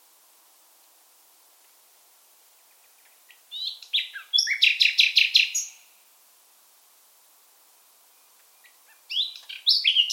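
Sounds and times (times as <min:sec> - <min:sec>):
common nightingale singing in full voice: 0:02.4 - 0:06.0, 0:08.0 - 0:10.1.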